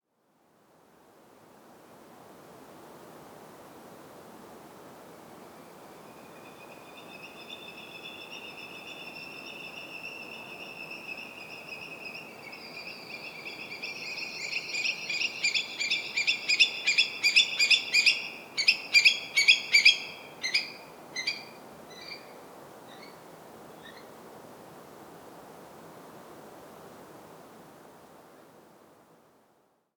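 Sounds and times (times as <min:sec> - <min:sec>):
Eurasian Stone-curlew Burhinus oedicnemus calling: 0:06.3 - 0:22.3.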